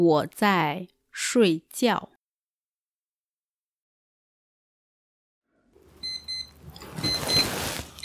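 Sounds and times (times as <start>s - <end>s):
speech: 0.0s - 2.1s
rustling and shuffling: 5.8s - 8.0s
alarm clock beeping: 6.0s - 8.0s.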